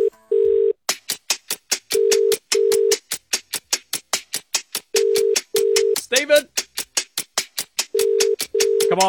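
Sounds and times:
phone call ringback tones: 0:00.0 - 0:00.8, 0:02.0 - 0:03.0, 0:05.0 - 0:06.0, 0:08.0 - 0:09.0
sharp rhythmic clicks: 0:00.9 - 0:09.0
speech: 0:06.1 - 0:06.6.

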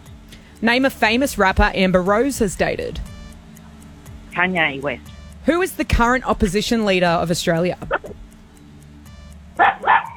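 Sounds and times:
quiet low hum: 0:00.0 - 0:10.1
speech: 0:00.6 - 0:03.1, 0:04.4 - 0:08.0
dog barking: 0:09.6 - 0:10.1.

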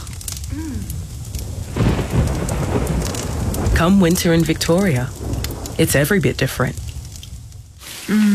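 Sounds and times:
deep rumble of thunder: 0:00.0 - 0:08.3
steady pouring rain: 0:00.0 - 0:08.3
speech: 0:00.6 - 0:01.0, 0:03.8 - 0:05.2, 0:05.8 - 0:06.8, 0:08.1 - 0:08.3.

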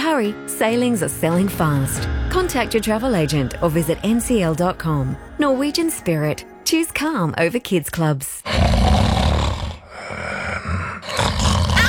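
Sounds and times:
speech: 0:00.1 - 0:09.0
loud rasping human snoring: 0:08.4 - 0:11.8.

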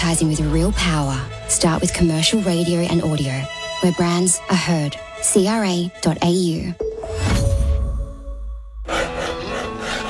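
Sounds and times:
speech: 0:00.1 - 0:07.4
wood rasping as a cricket bat is shaped by hand: 0:08.8 - 0:10.0.

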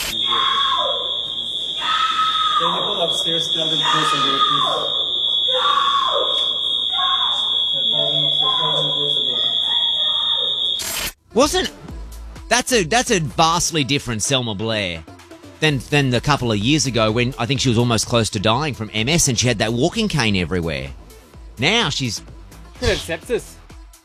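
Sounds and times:
steady high-pitched alarm tone: 0:00.0 - 0:11.2
person screaming and shouting: 0:00.2 - 0:01.2, 0:03.7 - 0:06.4
speech: 0:02.6 - 0:05.8, 0:11.4 - 0:11.9, 0:12.5 - 0:21.0, 0:21.6 - 0:23.5.

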